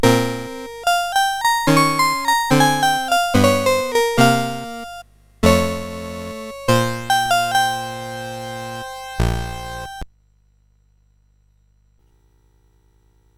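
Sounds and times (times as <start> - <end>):
mini piano playing: 0.0 - 10.0.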